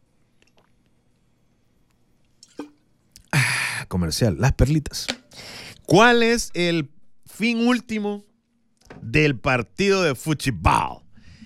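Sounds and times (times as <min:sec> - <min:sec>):
faint wet clicks of drinking water: 0:00.4 - 0:03.3
person gulping water: 0:02.4 - 0:03.6
speech: 0:03.9 - 0:08.3, 0:09.0 - 0:11.0.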